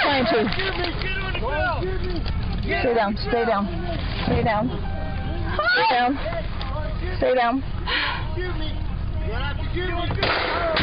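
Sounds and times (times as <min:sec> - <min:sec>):
constant noise: 0:00.0 - 0:10.8
speech: 0:00.2 - 0:05.0, 0:05.6 - 0:06.4, 0:07.0 - 0:10.8
muffled gunshot fired behind a truck: 0:10.2 - 0:10.8.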